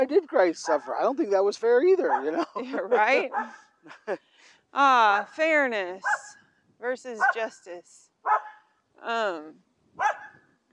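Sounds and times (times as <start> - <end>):
speech: 0.0 - 10.3
shaved poodle barking: 0.6 - 1.1, 2.0 - 2.4, 3.0 - 3.6, 6.0 - 6.4, 7.2 - 7.5, 8.2 - 8.7, 10.0 - 10.5
laughter: 2.0 - 4.3.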